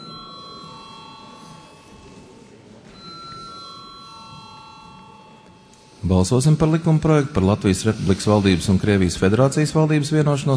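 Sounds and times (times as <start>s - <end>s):
chairman's bell ringing in parliament before a vote: 0.0s - 6.9s
noise: 0.0s - 10.5s
speech: 6.0s - 10.5s.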